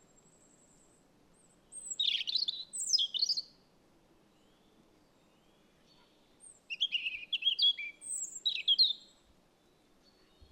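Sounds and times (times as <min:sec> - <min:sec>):
robin singing: 0:01.7 - 0:03.6, 0:05.9 - 0:09.2.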